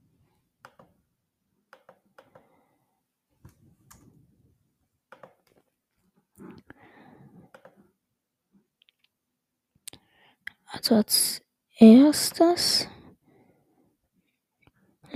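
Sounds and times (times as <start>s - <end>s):
sharp clicks: 5.1s - 5.6s
speech: 10.8s - 12.9s.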